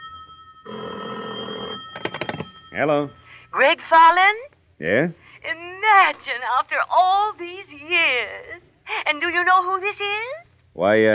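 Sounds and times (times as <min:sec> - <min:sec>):
telephone ringing with an incoming call: 0:00.0 - 0:03.3
speech: 0:02.8 - 0:11.1.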